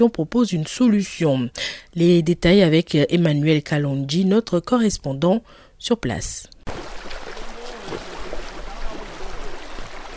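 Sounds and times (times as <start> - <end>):
speech: 0.0 - 6.9
river water rushing and trickling at the riverbank: 6.7 - 10.1.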